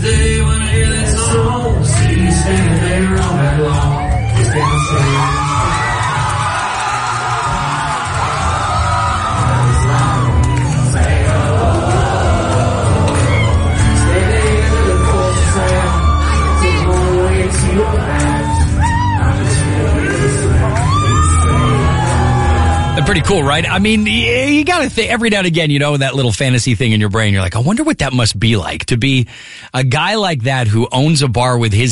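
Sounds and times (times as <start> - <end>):
concert music: 0.0 - 26.0
concert crowd cheering and whooping: 1.8 - 24.2
speech: 23.3 - 31.8.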